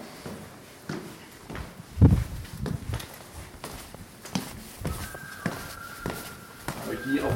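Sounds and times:
footsteps descending the main stairs down to a square: 0.0s - 7.3s
voices talking: 4.8s - 7.3s.

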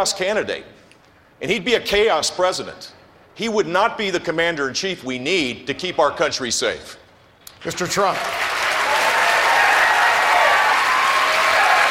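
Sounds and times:
speech: 0.0s - 0.8s, 1.4s - 7.0s, 7.6s - 8.6s
large audience applause after debate answer: 8.0s - 11.8s.

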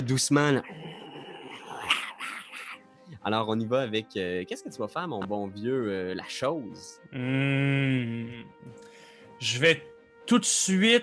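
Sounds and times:
speech: 0.0s - 0.8s, 3.2s - 11.0s
wolves growling and snarling: 0.6s - 2.8s.

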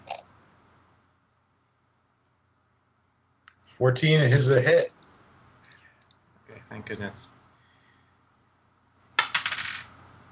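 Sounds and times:
speech: 3.8s - 4.9s, 6.9s - 7.4s
dice rolled for damage clattering onto a hard table: 9.2s - 10.0s.

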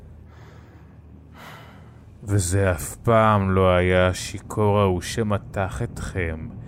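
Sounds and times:
heavy drawn-out laboured breath: 0.0s - 2.2s
low steady rumble: 0.0s - 6.6s
speech: 2.2s - 6.6s.

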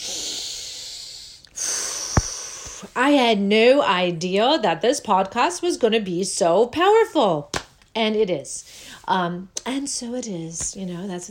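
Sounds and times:
deep breath drawn in and let out slowly: 0.0s - 2.9s
speech: 2.8s - 11.3s.

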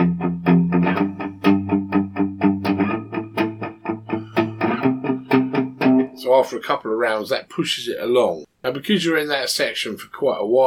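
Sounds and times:
electric guitar picked notes with delay and reverb: 0.0s - 6.2s
speech: 6.3s - 10.6s.

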